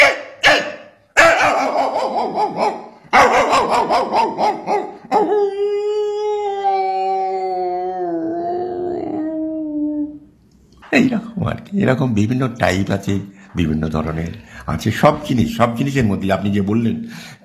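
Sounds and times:
dog barking at another dog: 0.0 - 5.4
dog howling: 1.2 - 10.2
speech: 11.0 - 17.4.

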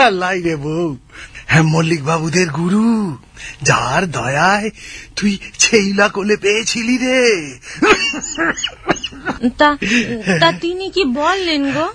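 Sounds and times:
speech: 0.0 - 11.9
laughter: 7.6 - 10.8
person coughing: 8.4 - 10.4.

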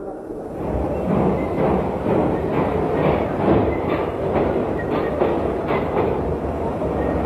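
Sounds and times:
train with engine and coaches rolling along the tracks: 0.4 - 7.2.

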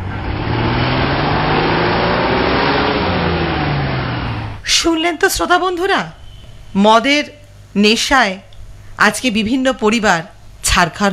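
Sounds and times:
car engine driving off: 0.0 - 4.6
speech: 5.1 - 11.1.

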